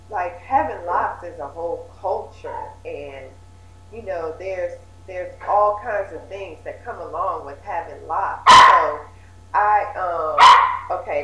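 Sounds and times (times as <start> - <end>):
speech: 0.1 - 11.2
puppy barking and whimpering: 8.5 - 9.0, 10.4 - 11.0.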